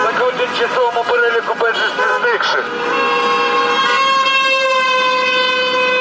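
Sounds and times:
speech: 0.6 - 1.0
car horns honking in city traffic in support of a rally: 1.8 - 5.9.

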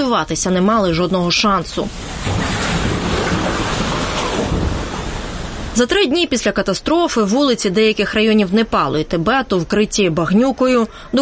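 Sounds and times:
speech: 0.0 - 2.8, 5.8 - 11.2
flood water wave rushing on the Nepal–Tibet border: 1.3 - 6.3.

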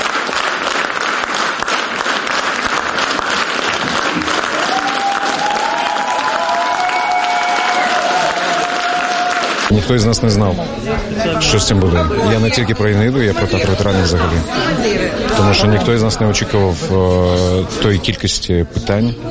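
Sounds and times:
large theater audience applauding in standing ovation: 0.0 - 9.8
theater audience cheering: 3.7 - 9.7
speech: 9.7 - 19.2.

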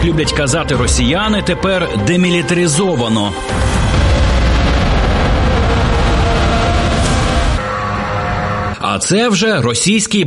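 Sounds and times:
speech: 0.0 - 4.1, 8.8 - 10.2
explosions from a drone strike rumbling: 3.4 - 8.4.

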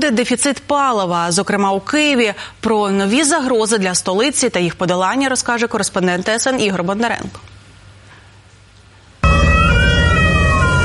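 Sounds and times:
speech: 0.0 - 7.6
fire rescue vehicle siren wailing at a gas station in Kyiv: 9.2 - 10.8.

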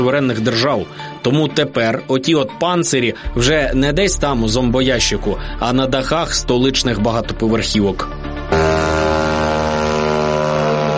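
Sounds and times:
speech: 0.0 - 8.2
drone engine buzzing overhead above a city: 8.1 - 10.9.

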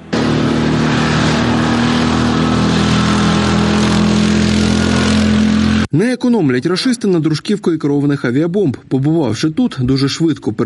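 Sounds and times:
quad bike engine rumbling: 0.0 - 5.9
speech: 6.0 - 10.6.

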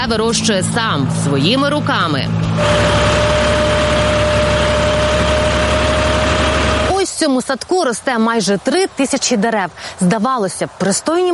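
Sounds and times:
speech: 0.0 - 3.4, 7.2 - 11.3
tractor engine running while mowing grass in Ukraine's Cherkasy region: 0.0 - 8.4.

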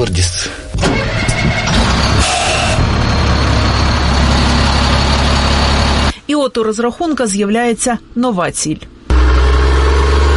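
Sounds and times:
speech: 0.0 - 0.4, 6.5 - 8.9
new heavy military vehicle engine roaring and revving: 0.8 - 6.2, 9.1 - 10.3.

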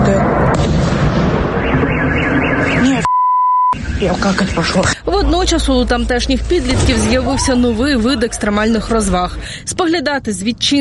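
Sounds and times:
loud rumbling drone explosions at night: 0.0 - 3.0, 3.8 - 9.8
car alarms wailing and chirping: 1.5 - 4.8
steady high-pitched beep: 2.4 - 3.8
speech: 4.0 - 10.7.

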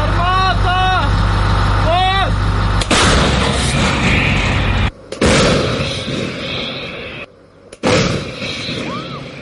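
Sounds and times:
steady engine hum: 0.0 - 9.4
self-propelled howitzer firing artillery shells: 2.8 - 3.8, 5.1 - 6.5, 7.8 - 9.2.

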